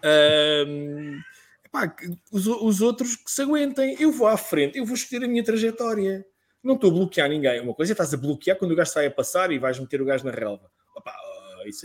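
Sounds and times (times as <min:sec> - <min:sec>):
speech: 0:00.0 - 0:00.8, 0:01.8 - 0:11.8
cat meowing: 0:00.9 - 0:01.4.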